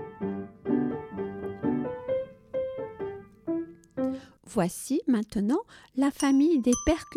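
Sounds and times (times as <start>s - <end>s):
piano playing chords and single notes: 0.0s - 4.3s
speech: 4.5s - 7.1s.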